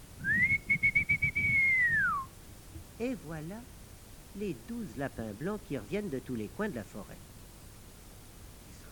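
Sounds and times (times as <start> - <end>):
low noise: 0.0 - 8.9
silver whistle blown in a long clear high tone: 0.2 - 2.3
speech: 3.0 - 3.8, 4.4 - 7.3.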